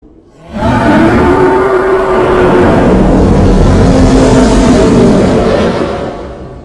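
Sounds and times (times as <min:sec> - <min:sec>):
minotaur roar: 0:00.3 - 0:06.6.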